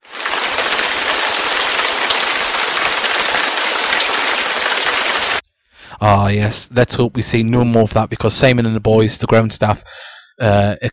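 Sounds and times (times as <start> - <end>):
heavy rain: 0.0 - 5.4
speech: 6.0 - 10.9.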